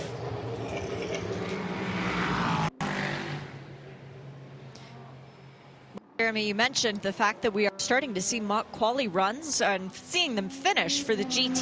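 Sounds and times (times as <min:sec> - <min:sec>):
GTP prototype race car engine roaring on track: 0:00.0 - 0:06.0, 0:06.7 - 0:11.6
speech: 0:06.2 - 0:11.6.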